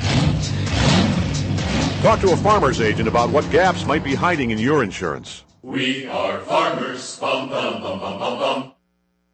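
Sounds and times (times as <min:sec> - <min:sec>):
car engine revving with a low throaty rumble: 0:00.0 - 0:05.6
speech: 0:02.0 - 0:08.8.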